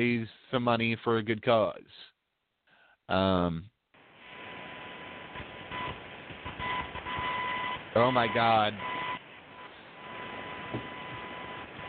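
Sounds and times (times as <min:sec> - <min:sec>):
speech: 0:00.0 - 0:02.1, 0:03.1 - 0:03.7, 0:08.0 - 0:09.0
electrical hum with thin constant tone on a call connection: 0:04.0 - 0:11.8.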